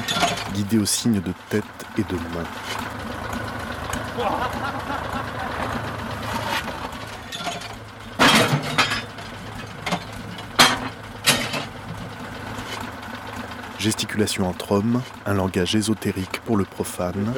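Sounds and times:
loud sharp metallic clanks and rattles: 0.0 - 0.6, 5.9 - 13.6
tractor engine rumbling while maneuvering: 0.0 - 17.3
speech: 0.6 - 3.0, 4.2 - 5.9, 13.8 - 17.3
laughter: 3.9 - 7.3.

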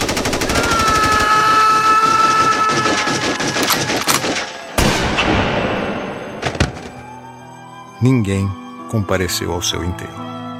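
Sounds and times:
rapid burst of gunfire: 0.0 - 5.6
speech: 8.0 - 10.3.

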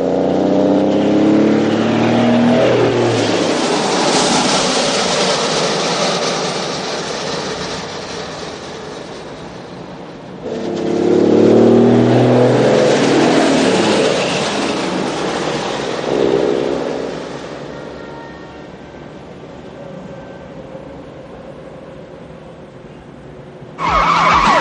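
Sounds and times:
car speeding at full speed: 0.0 - 7.9, 10.4 - 17.7, 23.8 - 24.5
truck speeding along a busy city road: 0.0 - 17.7, 23.8 - 24.5.

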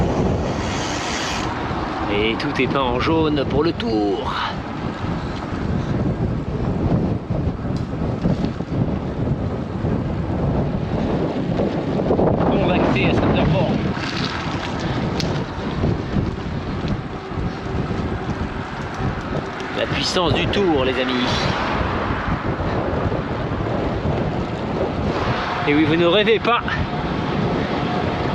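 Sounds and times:
strong wind buffeting the microphone: 0.0 - 28.3
speech: 2.1 - 5.1, 20.2 - 21.6, 25.7 - 26.9.

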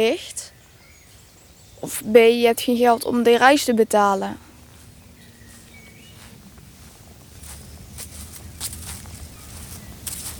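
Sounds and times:
speech: 0.0 - 0.4, 1.8 - 4.4
steady low rumble of wind or traffic: 0.0 - 10.3
footsteps crunching along a cemetery path: 4.4 - 10.3.

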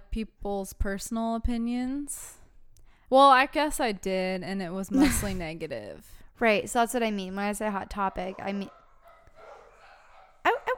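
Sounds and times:
speech: 0.2 - 2.4, 3.1 - 8.8
dog barking: 8.1 - 10.7.

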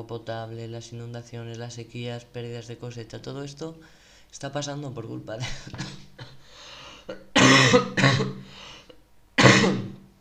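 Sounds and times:
speech: 0.0 - 6.1
person with a cough coughing: 5.4 - 10.0.

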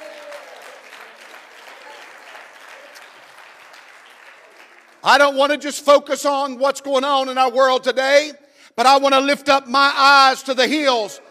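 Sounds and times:
congregation clapping hands: 0.0 - 6.0
speech: 5.0 - 11.2.

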